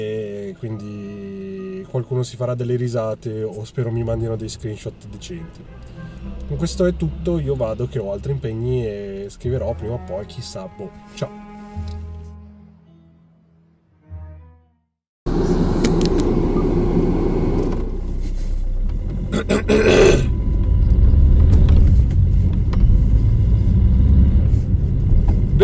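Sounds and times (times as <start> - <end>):
speech: 0.0 - 1.0, 1.9 - 12.0
car engine rumbling: 0.0 - 10.9, 15.3 - 25.6
low droning tones: 3.8 - 12.6, 15.3 - 25.6.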